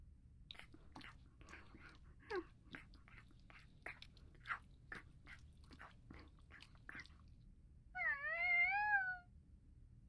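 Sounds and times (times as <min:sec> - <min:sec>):
cat chewing and crunching its breakfast: 0:00.5 - 0:07.4
cat meowing: 0:08.0 - 0:09.3.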